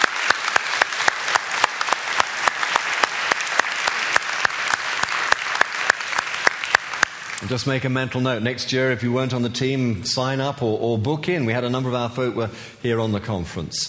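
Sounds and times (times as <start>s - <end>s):
audience applauding: 0.0s - 7.5s
speech: 7.4s - 13.8s.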